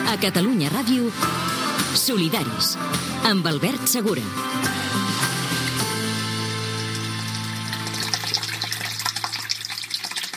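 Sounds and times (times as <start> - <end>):
speech: 0.1 - 1.5, 2.1 - 4.8
water flowing from a village spring fountain in Taradell: 5.7 - 10.3.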